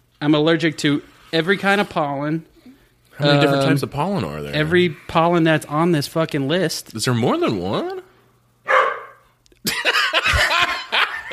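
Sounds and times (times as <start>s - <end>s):
speech: 0.2s - 2.5s, 3.2s - 8.0s
dog barking and yelping: 8.7s - 9.2s
laughter: 9.6s - 11.3s.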